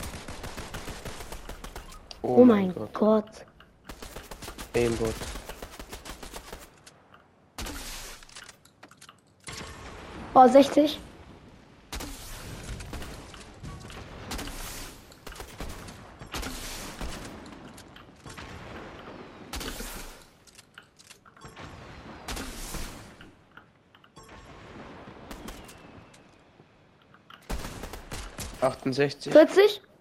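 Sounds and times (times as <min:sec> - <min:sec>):
rapid gunfire in a first-person shooter video game: 0:00.0 - 0:02.1, 0:03.9 - 0:06.8, 0:14.3 - 0:17.4, 0:27.5 - 0:28.7
speech: 0:02.2 - 0:03.5, 0:04.7 - 0:05.4, 0:10.4 - 0:11.1, 0:28.8 - 0:29.9.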